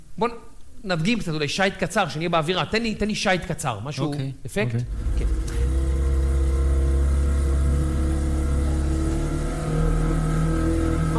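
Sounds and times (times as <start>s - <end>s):
speech: 0.2s - 5.2s
motorboat engine droning: 4.9s - 11.1s.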